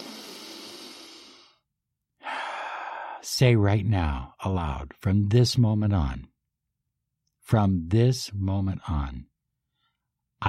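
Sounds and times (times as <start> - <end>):
deep breath: 0.0 - 3.2
speech: 3.2 - 6.3, 7.5 - 9.3.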